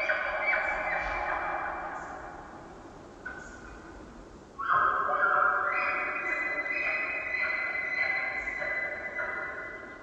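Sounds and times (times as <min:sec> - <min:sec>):
cow elk calling back in a valley: 0:00.0 - 0:02.2, 0:04.6 - 0:10.0.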